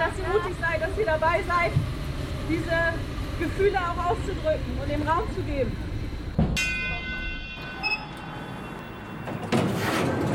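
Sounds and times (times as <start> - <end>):
steady rumbling hum of a busy train station: 0.0 - 7.4
speech: 0.4 - 5.9
train station sliding door whooshing open: 9.4 - 10.3.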